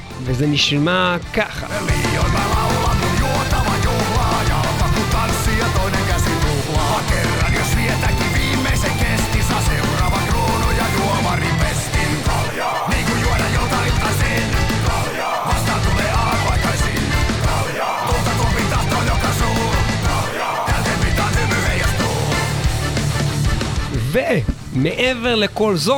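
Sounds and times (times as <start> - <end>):
Finnish-language cover song by a full band: 0.0 - 25.6
speech: 0.2 - 2.7, 24.2 - 25.9.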